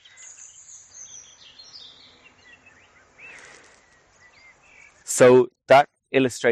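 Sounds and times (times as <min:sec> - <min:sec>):
European robin singing outdoors by canal: 0:00.0 - 0:05.4
speech: 0:05.2 - 0:06.5.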